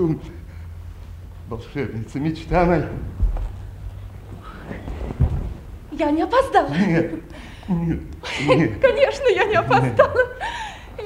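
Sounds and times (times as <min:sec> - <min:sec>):
speech: 0:00.0 - 0:00.4, 0:01.5 - 0:03.2, 0:06.0 - 0:11.0
low rumble: 0:00.0 - 0:11.0
loud thump: 0:02.6 - 0:03.8, 0:05.0 - 0:05.7
hard hollow footsteps approaching: 0:02.6 - 0:05.8.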